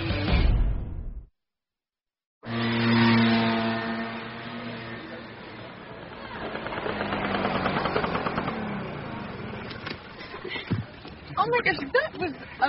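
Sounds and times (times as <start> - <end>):
small scooter engine carrying two riders: 2.4 - 12.6
speech: 11.6 - 12.0.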